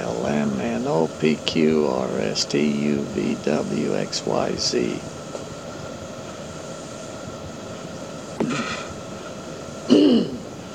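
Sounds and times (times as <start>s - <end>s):
speech: 0.2s - 5.2s
throat clearing: 8.4s - 8.9s, 9.9s - 10.4s.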